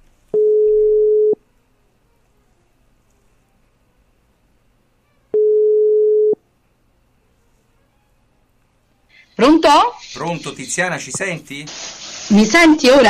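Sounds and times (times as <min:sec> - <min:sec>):
telephone ringing tone: 0:00.4 - 0:01.4, 0:05.3 - 0:06.4
speech: 0:09.4 - 0:13.0.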